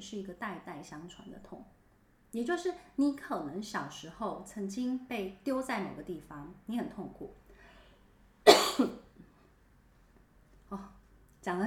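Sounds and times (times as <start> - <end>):
speech: 0.0 - 7.4, 10.7 - 11.6
person coughing: 8.5 - 9.1.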